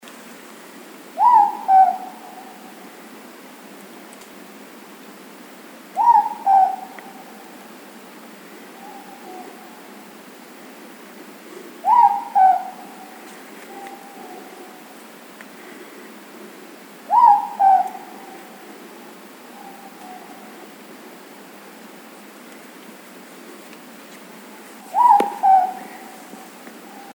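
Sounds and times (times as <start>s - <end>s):
morepork owl calling: 1.2s - 2.9s, 6.0s - 7.6s, 8.6s - 9.9s, 11.6s - 14.9s, 17.1s - 20.7s, 24.4s - 27.1s.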